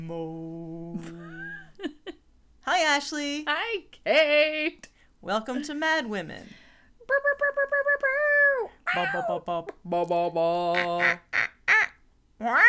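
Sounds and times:
speech: 0.1s - 1.2s, 2.7s - 8.2s, 8.9s - 11.3s, 12.4s - 12.6s
person imitating parrot squawks: 7.1s - 9.5s, 10.7s - 12.6s.

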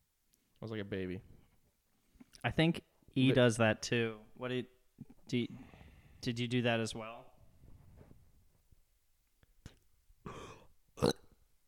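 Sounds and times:
speech: 0.6s - 1.4s, 2.4s - 7.3s
small short burp: 10.3s - 11.4s.

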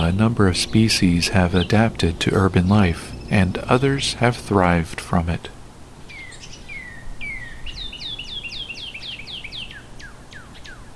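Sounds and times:
northern cardinal singing: 0.0s - 5.4s
speech: 0.0s - 5.6s
steady low hum: 0.0s - 10.9s.

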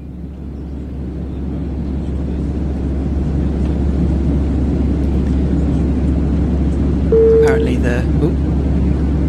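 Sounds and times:
airplane cockpit engine drone and rumble from a flight simulator: 0.0s - 9.2s.

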